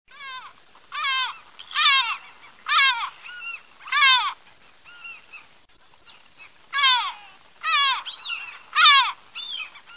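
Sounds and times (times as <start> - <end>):
seagulls calling: 0.1 - 5.5, 6.1 - 9.9.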